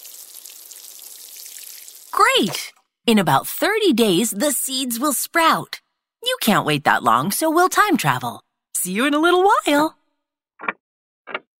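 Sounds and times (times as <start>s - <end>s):
water poured onto soil over freshly planted seeds: 0.0s - 2.7s
speech: 2.2s - 10.0s.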